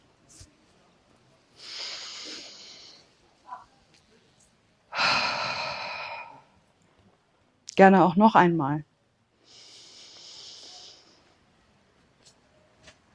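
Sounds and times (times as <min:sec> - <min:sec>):
deep breath drawn in through the nose during a guided breathing exercise: 0:01.6 - 0:03.1, 0:04.9 - 0:06.4, 0:09.4 - 0:11.3
speech: 0:07.8 - 0:08.9.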